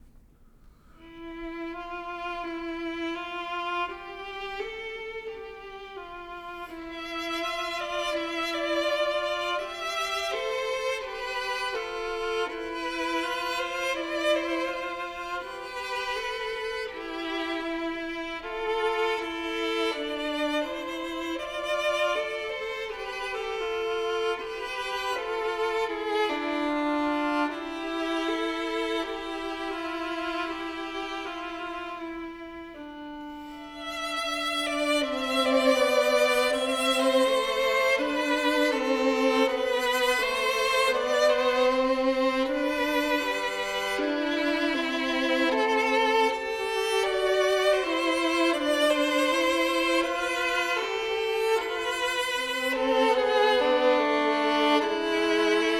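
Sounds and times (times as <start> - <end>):
two violins playing a duo: 0.8 - 55.7.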